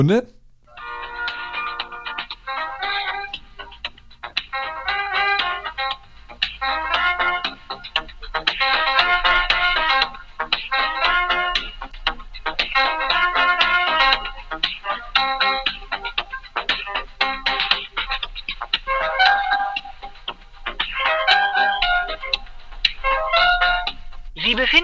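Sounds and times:
speech: 0:00.0 - 0:00.4
tinny electronic hold music over a phone line: 0:00.0 - 0:24.8.

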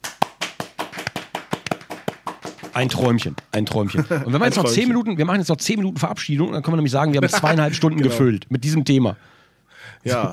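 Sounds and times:
hand clapping from a small group or one person: 0:00.0 - 0:03.6
speech: 0:02.8 - 0:10.3
laughter: 0:03.8 - 0:04.8, 0:07.1 - 0:08.1.

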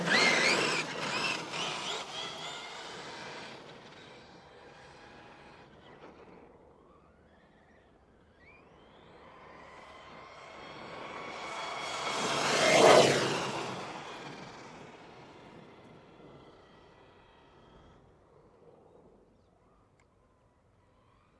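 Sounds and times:
RC truck brushless motor whining: 0:00.0 - 0:18.8.

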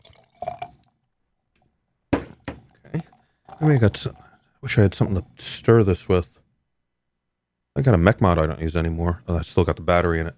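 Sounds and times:
beer being poured into a liquid mix: 0:00.0 - 0:01.0, 0:02.7 - 0:04.3
speech: 0:02.9 - 0:06.4, 0:07.8 - 0:10.3.

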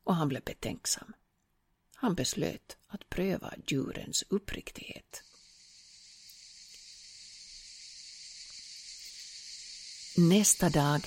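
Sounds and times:
speech: 0:00.1 - 0:01.2, 0:02.0 - 0:05.3, 0:10.2 - 0:11.0
cicadas chirping in a forest at midday: 0:05.2 - 0:11.0
faint ticks: 0:05.2 - 0:11.0.

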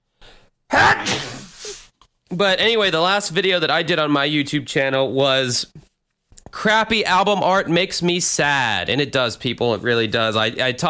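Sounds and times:
loud sneeze: 0:00.7 - 0:02.0
speech: 0:02.3 - 0:05.9, 0:06.5 - 0:10.8.

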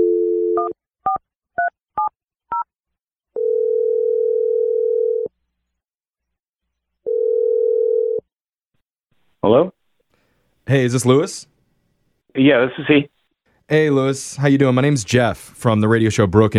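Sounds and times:
telephone dial tone: 0:00.0 - 0:00.8, 0:03.4 - 0:05.3, 0:07.1 - 0:08.3
speech: 0:09.5 - 0:09.7, 0:10.7 - 0:11.5, 0:12.4 - 0:13.1, 0:13.7 - 0:16.5.

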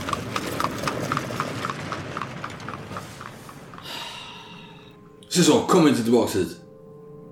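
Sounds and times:
horse hooves clip-clopping on a muddy street: 0:00.0 - 0:04.3
hissing, creaky rattle of horse-drawn cab wheels: 0:00.0 - 0:04.4
speech: 0:05.4 - 0:06.6.

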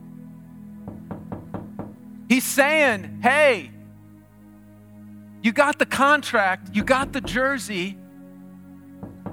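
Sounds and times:
firm knocks on a wooden door: 0:00.9 - 0:02.0, 0:06.8 - 0:07.5, 0:09.0 - 0:09.3
speech: 0:02.3 - 0:03.8, 0:05.4 - 0:08.0.

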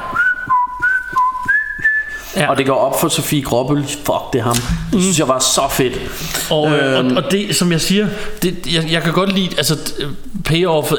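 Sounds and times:
person whistling a short melodic tune: 0:00.0 - 0:02.4
speech: 0:02.4 - 0:10.9.

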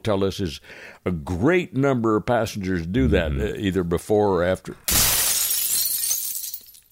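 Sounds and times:
speech: 0:00.0 - 0:05.0
bourbon glass shattering: 0:04.9 - 0:06.8
tinkling of bourbon glass shards: 0:04.9 - 0:06.8.

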